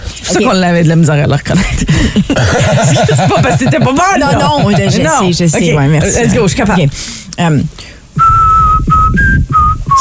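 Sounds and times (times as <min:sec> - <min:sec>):
speech: 0:00.3 - 0:08.4, 0:09.1 - 0:10.0
laughter: 0:01.7 - 0:06.7
whistled melody of a rock song: 0:08.2 - 0:10.0.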